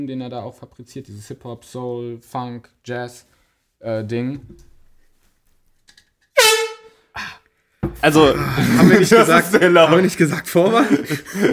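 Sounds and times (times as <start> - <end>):
speech: 0.0 - 4.7, 7.9 - 11.5
air horn blast sound effect for veto button: 6.4 - 7.1
laughter: 8.1 - 11.5.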